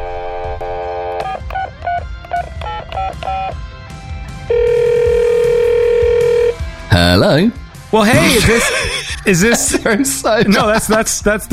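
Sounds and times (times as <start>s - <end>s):
loud continuous telephone ringing tone: 0.0s - 2.0s, 2.6s - 3.6s, 4.5s - 6.6s
telephone dial tone: 0.0s - 2.0s, 4.5s - 6.6s
speech: 7.0s - 11.5s
laughter: 8.0s - 11.4s.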